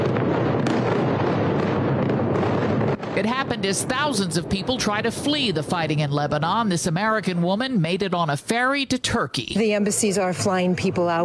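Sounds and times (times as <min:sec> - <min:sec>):
continuous rumbling roar of large explosions near an airport in Lebanon: 0:00.0 - 0:08.2
sharper explosion blasts near an airport in Lebanon: 0:00.0 - 0:08.6
speech: 0:03.2 - 0:11.2.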